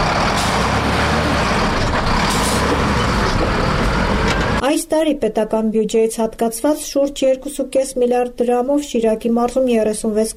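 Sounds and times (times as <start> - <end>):
heavy cargo trucks rumbling past on a potholed road: 0.0 - 4.6
speech: 4.9 - 10.3.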